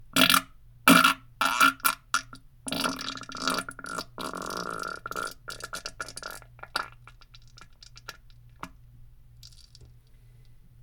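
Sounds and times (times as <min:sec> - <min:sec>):
loud wet fart: 0:00.2 - 0:08.7.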